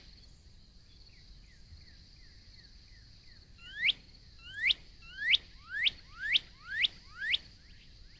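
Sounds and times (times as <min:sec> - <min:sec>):
Northern cardinal singing upward-sweeping whistles: 0:03.8 - 0:07.5.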